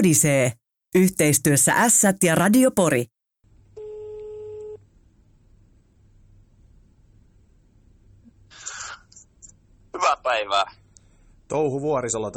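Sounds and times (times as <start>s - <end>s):
speech: 0.0s - 3.2s, 11.5s - 12.3s
electronic telephone ringing tone: 3.8s - 4.8s.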